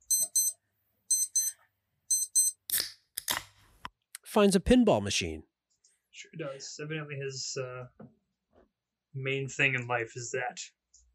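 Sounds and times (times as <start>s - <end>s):
alarm clock with high shrill double beeps: 0.0s - 2.6s
speech: 4.4s - 5.5s, 6.2s - 8.2s, 9.2s - 11.1s.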